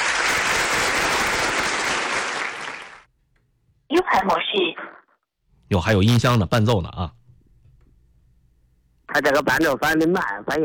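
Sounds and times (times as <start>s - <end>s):
crowd applause: 0.0s - 3.1s
speech: 4.0s - 5.0s, 5.7s - 7.2s, 9.2s - 10.6s.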